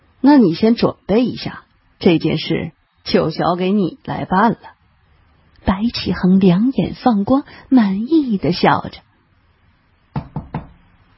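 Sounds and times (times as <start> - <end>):
speech: 0.2 - 4.8, 5.6 - 9.1
knocking on a door: 10.1 - 10.9.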